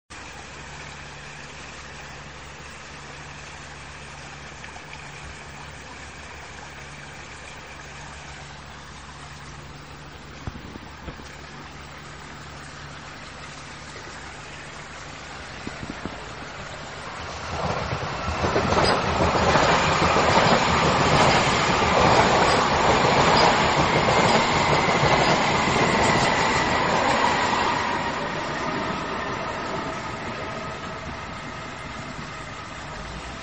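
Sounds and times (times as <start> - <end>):
S-Bahn suburban train: 0.1 - 10.3, 11.4 - 33.4.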